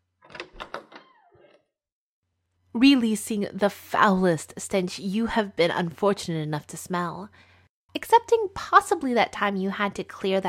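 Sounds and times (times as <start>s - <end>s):
lock clicking open as its tumblers turn over: 0.2s - 1.2s
door swinging open with a brief creak: 0.2s - 1.7s
speech: 2.8s - 10.4s.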